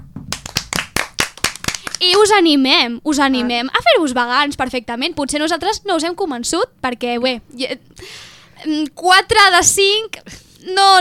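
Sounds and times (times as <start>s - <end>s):
sharp hand claps: 0.2s - 2.3s
speech: 2.0s - 10.9s.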